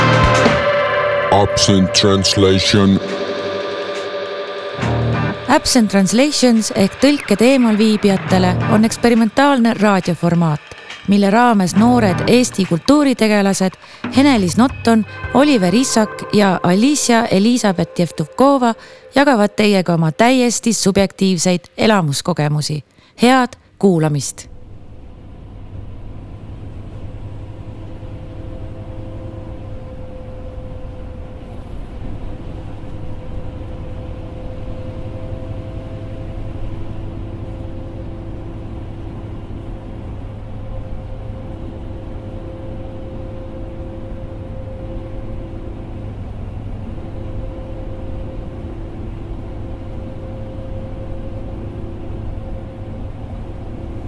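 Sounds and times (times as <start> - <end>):
moving bus engine drone: 0.0 - 11.1
speech: 1.3 - 3.3, 5.6 - 24.5.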